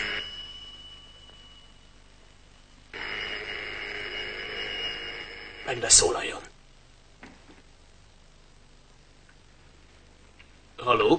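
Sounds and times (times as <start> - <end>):
telephone bell ringing: 0.0 - 2.0, 2.9 - 6.4
faint steady high hum: 0.0 - 11.1
speech: 5.7 - 6.5, 10.8 - 11.1.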